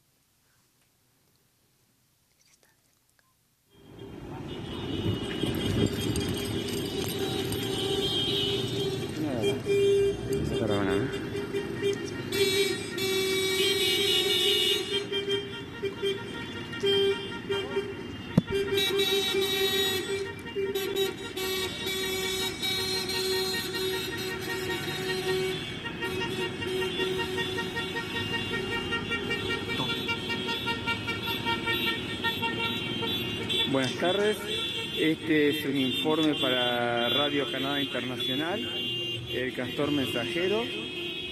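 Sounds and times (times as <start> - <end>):
car horns honking in a political campaign caravan parade in Uruguay: 3.7 - 41.3
rumble of car engines: 3.8 - 37.6
speech: 35.1 - 38.8, 39.4 - 40.8.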